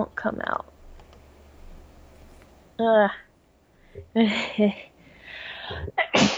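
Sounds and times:
speech: 0.0s - 0.7s, 2.8s - 3.2s, 4.0s - 4.9s
person sneezing: 5.6s - 6.3s.

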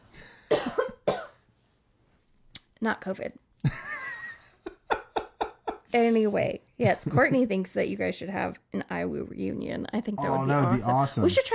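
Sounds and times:
person coughing: 0.4s - 1.4s
speech: 2.8s - 3.9s, 5.9s - 11.5s.

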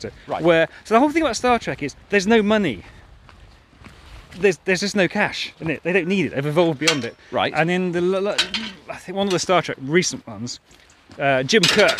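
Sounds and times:
speech: 0.0s - 3.0s, 4.4s - 11.9s
metal gate clanking and rattling: 6.7s - 7.3s, 8.2s - 9.6s, 11.6s - 11.9s.

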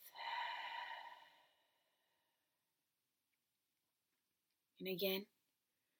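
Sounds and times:
deep breath in through the nose and out through the mouth in a guided breathing exercise: 0.0s - 2.4s
speech: 4.8s - 5.3s.

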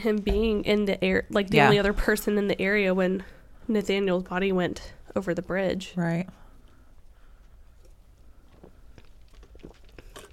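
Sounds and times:
speech: 0.0s - 6.4s
swallow-like pops: 8.5s - 10.3s
person sipping a drink: 8.6s - 10.3s.

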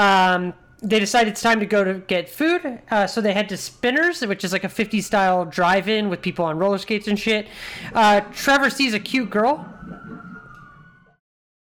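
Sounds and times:
siren wailing outside: 0.0s - 1.7s, 7.9s - 11.2s
speech: 0.0s - 10.2s.

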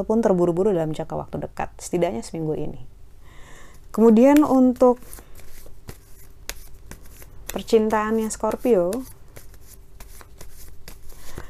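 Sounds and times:
speech: 0.0s - 2.9s, 3.9s - 5.2s, 7.6s - 9.2s
low steady hum: 0.0s - 11.4s
tarot cards being shuffled and drawn: 4.2s - 11.4s.

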